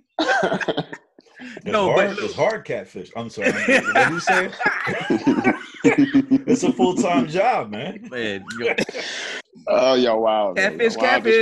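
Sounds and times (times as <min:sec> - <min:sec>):
laughter: 0:00.2 - 0:02.6, 0:03.4 - 0:09.4
speech: 0:00.4 - 0:11.3
man harshly clearing his throat: 0:04.6 - 0:09.2.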